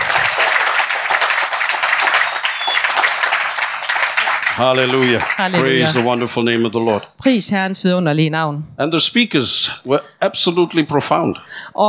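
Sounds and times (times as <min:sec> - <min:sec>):
audience applause: 0:00.0 - 0:06.4
speech: 0:04.6 - 0:11.8.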